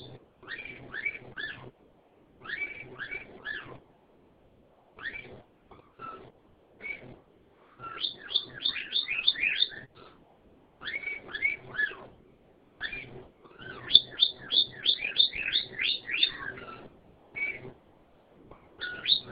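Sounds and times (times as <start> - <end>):
soft bird chatter: 0.0 - 4.1, 4.8 - 19.3
bird twittering in rising and falling whistled notes: 2.4 - 3.7, 5.0 - 5.4, 7.8 - 10.0, 10.8 - 12.0, 12.8 - 16.8, 17.4 - 17.6, 18.8 - 19.3.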